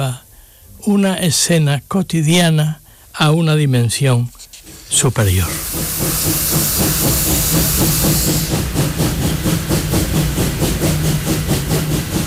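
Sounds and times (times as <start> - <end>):
speech: 0.0 - 0.2, 0.8 - 9.9
steam locomotive chuffing: 4.8 - 12.2.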